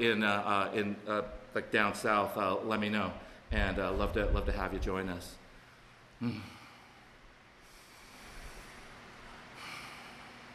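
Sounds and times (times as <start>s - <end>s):
speech: 0.0s - 5.4s, 6.2s - 6.6s
heavy breathing: 6.2s - 10.5s.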